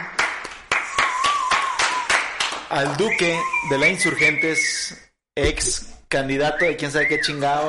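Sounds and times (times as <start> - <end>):
small group of people applauding a guest: 0.0 - 4.4
faint sustained whistle: 0.9 - 2.2, 3.0 - 5.0
speech: 2.7 - 7.6.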